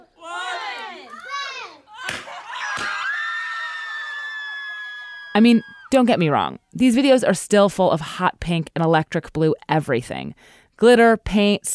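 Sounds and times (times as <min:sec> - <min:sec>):
family shrieking with delight at a party: 0:00.2 - 0:05.9
speech: 0:05.4 - 0:11.7.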